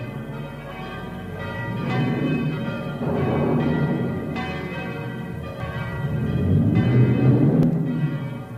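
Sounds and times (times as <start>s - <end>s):
village church bells ringing the storm-warning peal: 0.0s - 8.5s.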